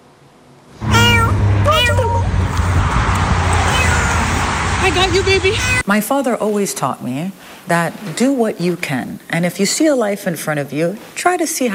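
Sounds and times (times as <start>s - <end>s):
cats meowing at a cat sanctuary: 0.8s - 2.3s, 3.6s - 4.2s
rumble: 0.8s - 5.8s
speech: 5.0s - 11.7s.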